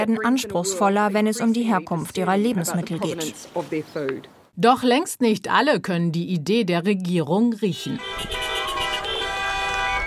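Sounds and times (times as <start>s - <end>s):
steady traffic noise: 0.0s - 5.0s, 7.2s - 10.0s
speech: 0.0s - 8.4s
several car horns honking at a farmers' protest: 7.7s - 10.0s.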